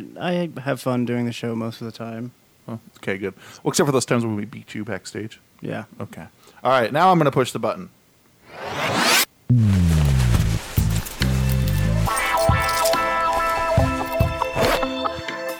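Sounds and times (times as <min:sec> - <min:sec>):
speech: 0:00.0 - 0:09.7
zipper being pulled down: 0:08.5 - 0:14.9.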